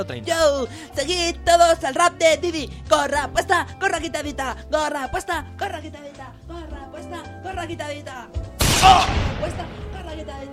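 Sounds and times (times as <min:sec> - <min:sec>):
speech: 0:00.0 - 0:10.5
gunshot: 0:08.6 - 0:10.0.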